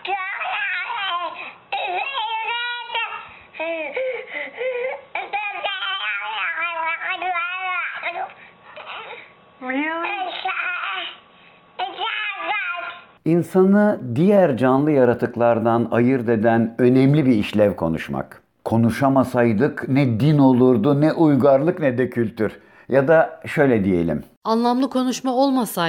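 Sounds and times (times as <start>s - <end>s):
baby giggling: 0.0s - 9.3s
baby babbling and cooing: 0.0s - 11.2s, 11.8s - 13.2s
speech: 13.3s - 25.8s.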